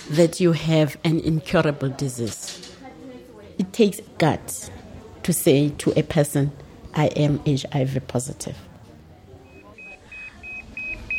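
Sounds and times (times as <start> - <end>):
speech: 0.1 - 2.7, 3.6 - 8.7
hospital pager bleeping: 9.4 - 11.1.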